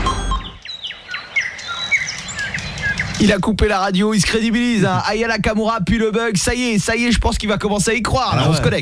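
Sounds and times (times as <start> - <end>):
birdsong with chirps and warbling phrases: 0.1 - 3.6
speech: 3.2 - 8.8.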